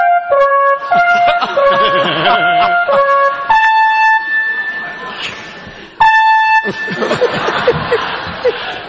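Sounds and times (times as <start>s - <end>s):
fire alarm with electronic tones: 0.1s - 7.7s
people laughing: 0.8s - 3.4s, 6.6s - 8.8s
people talking: 0.9s - 2.9s, 4.2s - 6.0s, 6.7s - 8.8s.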